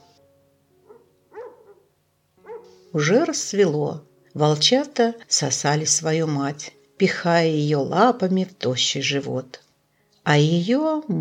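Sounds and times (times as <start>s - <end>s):
puppy barking angrily in short sharp yips: 0.9s - 2.7s
speech: 2.9s - 9.6s, 10.3s - 11.2s.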